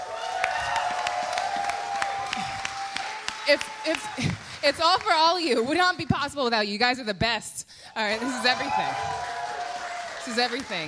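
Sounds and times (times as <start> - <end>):
live crowd applauding: 0.0 - 5.6, 8.0 - 10.8
speech: 3.5 - 9.3, 10.3 - 10.8.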